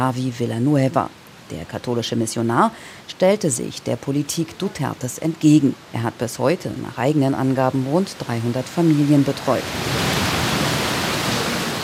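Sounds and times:
speech: 0.0s - 10.0s
heavy pouring rain: 7.4s - 11.8s.

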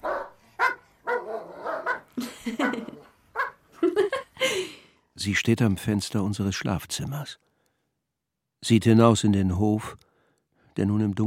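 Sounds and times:
dogs barking: 0.0s - 3.7s
laughter: 2.2s - 3.0s, 3.8s - 4.8s
speech: 2.2s - 3.1s, 5.2s - 7.5s, 8.6s - 10.0s, 10.8s - 11.2s.

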